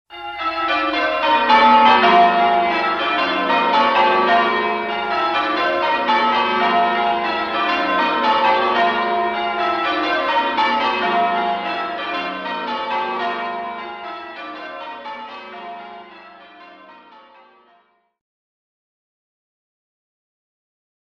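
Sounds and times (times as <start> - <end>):
church wedding bells: 0.1 - 17.8.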